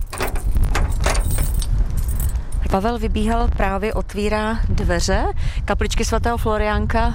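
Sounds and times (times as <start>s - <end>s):
bundle of keys jangling: 0.0s - 2.6s
low rumbling wind on a hilltop above Moravský Krumlov: 0.0s - 7.1s
speech: 2.7s - 7.1s.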